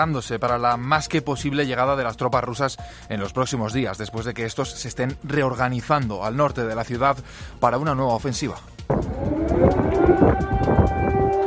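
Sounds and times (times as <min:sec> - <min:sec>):
speech: 0:00.0 - 0:11.0
air raid sirens wailing: 0:08.9 - 0:11.4.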